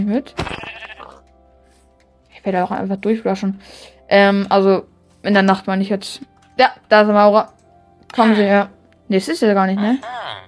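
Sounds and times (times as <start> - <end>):
speech: 0.0 - 0.9, 2.4 - 10.2
single sheep bleating: 0.4 - 1.2, 10.0 - 10.4.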